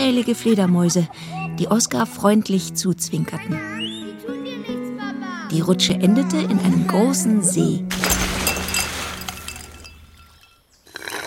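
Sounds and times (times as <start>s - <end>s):
speech: 0.1s - 3.9s, 5.5s - 8.0s
ice cubes clinking in a glass of lemonade: 8.0s - 10.6s.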